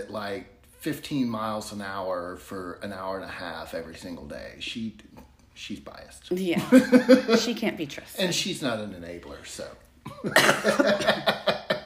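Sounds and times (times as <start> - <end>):
speech: 0.0 - 11.5
laughter: 6.6 - 7.6, 10.1 - 11.8
person coughing: 10.1 - 11.0.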